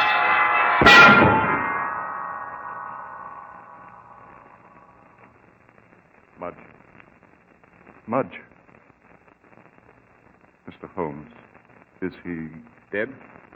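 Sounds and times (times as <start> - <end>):
huge church bell falling and crashing down: 0.0 - 4.8
speech: 8.1 - 8.4, 12.1 - 13.5.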